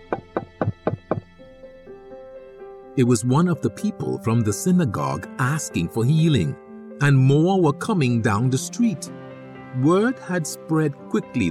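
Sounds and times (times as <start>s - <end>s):
firm knocking on a door: 0.0s - 1.4s
speech: 3.0s - 11.5s.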